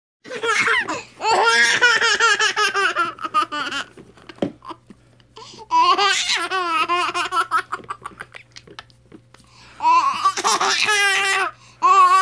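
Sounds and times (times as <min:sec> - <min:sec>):
baby bursting into laughter: 0:00.2 - 0:04.0, 0:05.6 - 0:08.9, 0:09.8 - 0:12.1.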